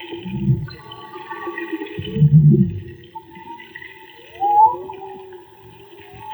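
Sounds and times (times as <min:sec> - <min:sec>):
underwater whale long tonal whistles and rising upsweep: 0:00.0 - 0:06.3
underwater whale grunting moans: 0:00.2 - 0:01.1, 0:02.0 - 0:03.2.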